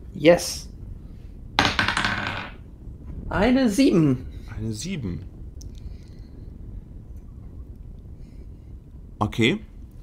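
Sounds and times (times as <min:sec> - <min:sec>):
speech: 0:00.2 - 0:00.7, 0:03.3 - 0:05.3, 0:09.2 - 0:09.7
twenty-sided die clattering across a hard tabletop: 0:01.6 - 0:02.6.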